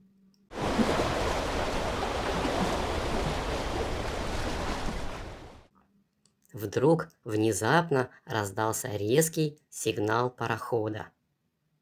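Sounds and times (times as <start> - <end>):
sea waves washing past a sailing steamship: 0.5 - 5.7
speech: 6.6 - 11.2.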